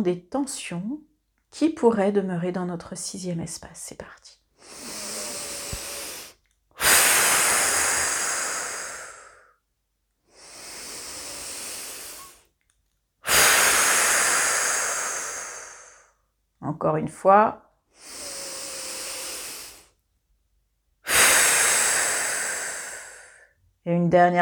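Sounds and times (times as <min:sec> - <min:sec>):
speech: 0:00.0 - 0:04.9, 0:16.7 - 0:17.6, 0:23.9 - 0:24.4
deep exhalations during a relaxation breathing exercise: 0:04.6 - 0:09.5, 0:10.3 - 0:12.4, 0:13.2 - 0:16.1, 0:18.0 - 0:19.9, 0:21.1 - 0:23.5.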